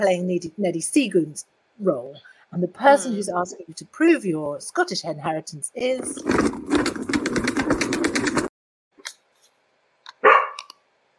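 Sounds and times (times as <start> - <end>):
speech: 0.0 - 6.6
fast steady rattling clatter: 5.9 - 8.5
dog giving a sharp bark: 10.2 - 10.7.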